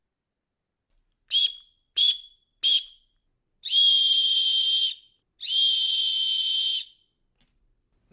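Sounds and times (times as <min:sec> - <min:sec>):
emergency disaster-prevention whistle blasts: 0:01.3 - 0:07.1.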